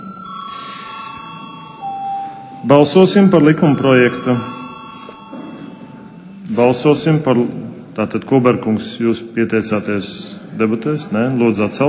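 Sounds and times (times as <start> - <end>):
bell ringing in a parliamentary chamber to call a vote: 0.0 - 7.0
speech: 2.6 - 4.6, 6.6 - 11.8.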